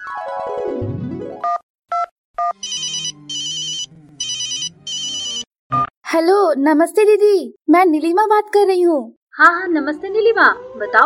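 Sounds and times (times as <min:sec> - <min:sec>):
phone's electronic ringtone: 0:02.4 - 0:05.5
speech: 0:06.1 - 0:11.0.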